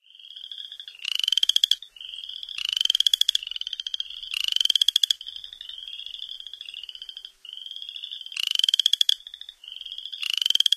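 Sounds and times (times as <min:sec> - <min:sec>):
Upland chorus frog calls in North America: 0:00.1 - 0:10.7.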